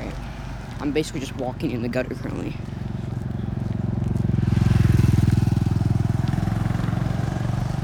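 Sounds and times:
speech: 0.9 - 2.7
motorcycle engine rumbling and passing by: 2.2 - 7.8.

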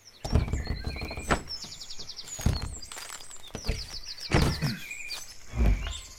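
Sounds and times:
wooden door of a pitched-roof building creaking open: 0.2 - 4.7.

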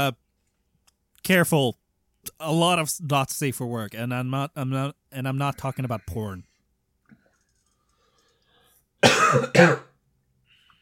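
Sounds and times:
speech: 0.0 - 0.2, 1.3 - 6.5, 9.0 - 9.9
harsh throaty coughs caused by too much pepper in a salad: 9.0 - 10.0.

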